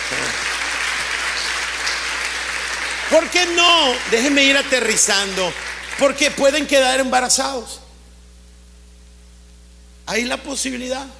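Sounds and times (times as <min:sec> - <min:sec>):
audience applause at a talk: 0:00.0 - 0:06.6
speech: 0:03.1 - 0:07.8, 0:10.1 - 0:11.1.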